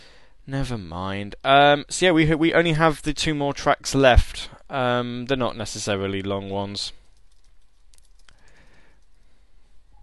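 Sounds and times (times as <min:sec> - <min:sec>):
speech: 0:00.5 - 0:07.0
soft computer keyboard clicks: 0:07.0 - 0:09.3.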